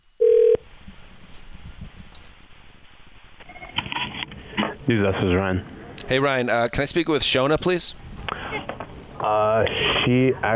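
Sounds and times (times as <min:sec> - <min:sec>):
short loud telephone tone: 0:00.2 - 0:00.6
speech: 0:04.9 - 0:08.0, 0:09.2 - 0:10.5.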